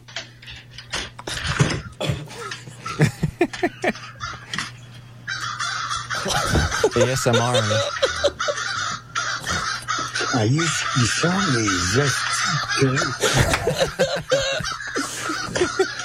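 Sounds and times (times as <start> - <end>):
crows cawing: 1.8 - 16.0
people laughing: 2.3 - 4.6, 6.0 - 16.0
speech: 7.0 - 8.0, 10.4 - 14.8.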